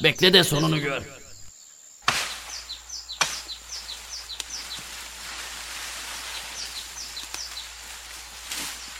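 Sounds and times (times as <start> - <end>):
speech: 0.0 - 1.2
small birds chirping outdoors: 0.0 - 8.9
hunter snapping tree branches outdoors: 2.0 - 8.9.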